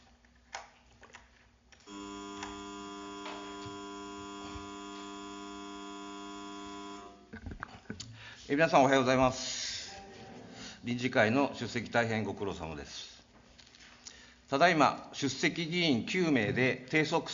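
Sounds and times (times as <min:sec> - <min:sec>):
faint room noise: 0:00.0 - 0:17.3
electric buzzer opening a session of a Japanese town council: 0:01.8 - 0:07.3
speech: 0:08.5 - 0:09.6, 0:10.8 - 0:13.1, 0:14.5 - 0:17.3.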